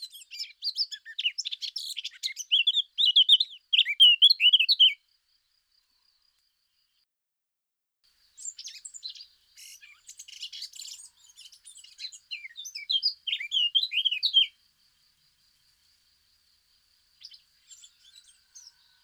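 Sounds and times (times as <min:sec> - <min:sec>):
Eurasian blackcap warbling song: 0:00.0 - 0:05.0, 0:08.3 - 0:14.6, 0:17.2 - 0:19.0.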